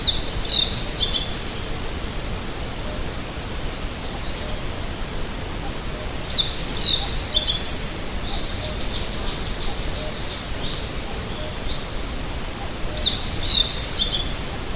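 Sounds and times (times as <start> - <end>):
Meadow bunting song: 0.0 - 1.8, 6.3 - 12.0, 12.9 - 14.7
steady hiss: 0.0 - 14.7.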